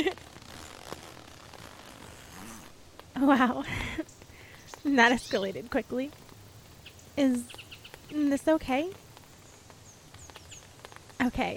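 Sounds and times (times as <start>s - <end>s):
zipper being zipped closed: 0.0s - 2.8s
soft rustling: 0.0s - 11.5s
speech: 3.2s - 4.1s, 4.8s - 6.2s, 7.2s - 9.0s, 11.2s - 11.5s.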